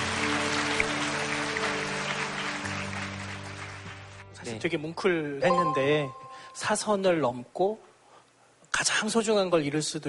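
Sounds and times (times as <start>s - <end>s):
studio audience clapping: 0.0s - 4.6s
speech: 4.5s - 7.9s, 8.8s - 10.0s.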